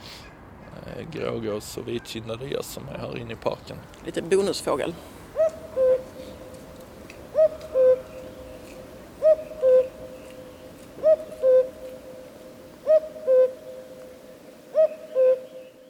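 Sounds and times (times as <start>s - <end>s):
faint outdoor hum: 0.0s - 15.8s
speech: 1.0s - 5.2s
common cuckoo calling its two-note call: 5.4s - 15.8s.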